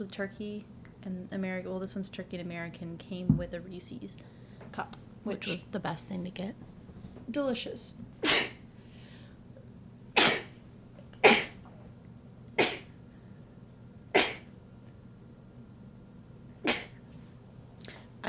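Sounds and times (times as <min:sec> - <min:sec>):
speech: 0:00.0 - 0:06.7, 0:07.3 - 0:08.4
low steady hum: 0:00.0 - 0:18.2
person sneezing: 0:08.2 - 0:08.6, 0:10.2 - 0:10.6, 0:11.2 - 0:11.6, 0:12.6 - 0:12.9, 0:14.1 - 0:14.5, 0:16.6 - 0:17.0.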